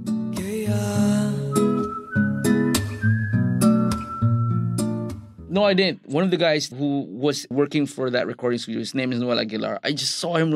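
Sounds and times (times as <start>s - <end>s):
speech: 0.7s - 1.0s, 5.6s - 10.5s
clear whistled melody: 0.8s - 5.3s.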